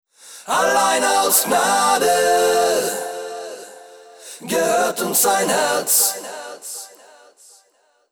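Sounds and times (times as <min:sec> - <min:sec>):
clean choir mobile phone ringtone: 0:00.5 - 0:06.8.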